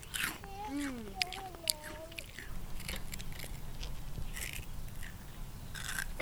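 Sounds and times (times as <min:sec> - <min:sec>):
someone biting into and chewing a crispy fried flower fritter: 0:00.0 - 0:06.2
brief hummed vocal sound: 0:00.4 - 0:02.3.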